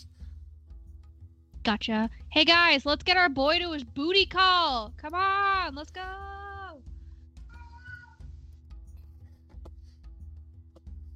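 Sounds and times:
speech: 0:01.6 - 0:06.9
cat meowing: 0:07.5 - 0:08.2.

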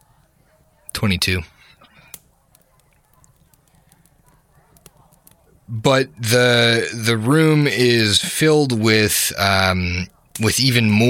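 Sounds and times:
fire crackling in a large four-sided stone fireplace: 0:00.0 - 0:11.0
speech: 0:01.0 - 0:01.6, 0:05.7 - 0:11.0.

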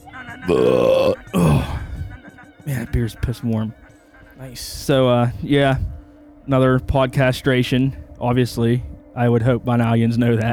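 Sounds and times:
speech: 0:00.5 - 0:01.2, 0:02.9 - 0:03.8, 0:04.4 - 0:10.5
loud throaty burp: 0:00.5 - 0:01.9.

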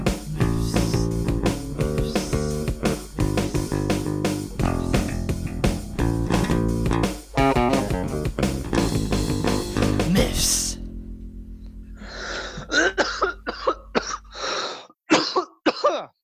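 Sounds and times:
music: 0:00.0 - 0:12.6
person coughing: 0:12.4 - 0:14.4, 0:15.1 - 0:16.2
throat clearing: 0:12.5 - 0:14.3, 0:15.1 - 0:16.2.

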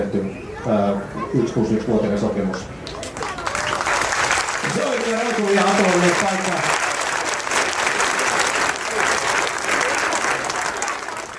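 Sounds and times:
speech: 0:00.1 - 0:02.8, 0:05.1 - 0:06.9
large outdoor crowd clapping at a harbour square: 0:02.8 - 0:11.3.

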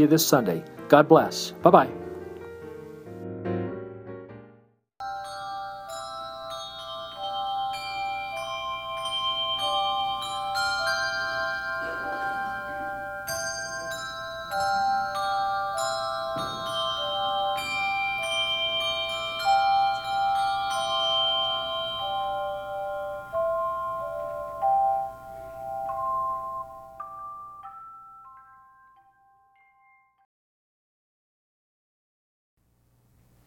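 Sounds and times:
speech: 0:00.0 - 0:02.0
handbell choir ringing at a United Methodist church: 0:05.0 - 0:30.1.

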